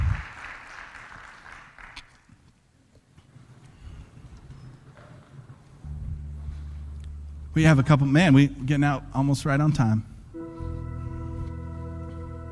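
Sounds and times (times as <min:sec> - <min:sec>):
crowd clapping together in a dense burst: 0:00.0 - 0:02.5
low room rumble: 0:05.5 - 0:12.5
sustained low musical tone: 0:05.8 - 0:12.5
speech: 0:07.6 - 0:10.1.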